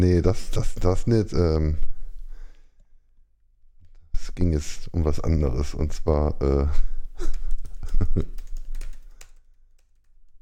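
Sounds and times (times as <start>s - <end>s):
speech: 0.0s - 1.9s, 4.3s - 7.4s, 8.1s - 8.4s
typing on a computer keyboard: 7.2s - 10.4s.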